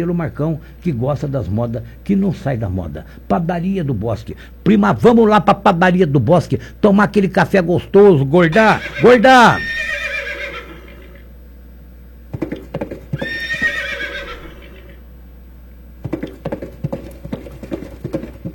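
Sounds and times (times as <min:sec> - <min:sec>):
speech: 0:00.0 - 0:10.0
horse whinnying: 0:08.5 - 0:11.3, 0:12.4 - 0:15.0
horse hooves clopping on a hard surface: 0:12.3 - 0:14.9, 0:16.0 - 0:18.5.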